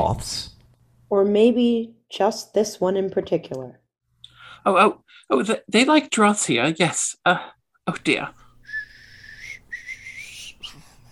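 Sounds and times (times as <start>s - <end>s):
speech: 0.1s - 0.5s, 1.1s - 3.8s, 4.6s - 8.4s
person whistling a tune: 8.7s - 10.8s.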